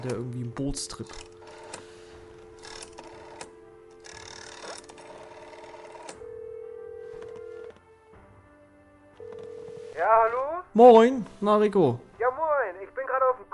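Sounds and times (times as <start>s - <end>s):
speech: 0.0s - 1.3s, 10.8s - 12.1s
telephone dialing tones and clicks: 1.1s - 7.8s, 9.2s - 10.4s.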